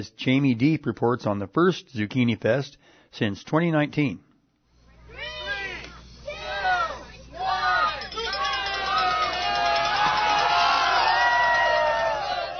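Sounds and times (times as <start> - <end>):
speech: 0.0 - 4.3
excited shouts at zucchini races: 5.1 - 12.5
outdoor festival crowd cheering and yelling at zucchini races in the rain: 5.1 - 12.5.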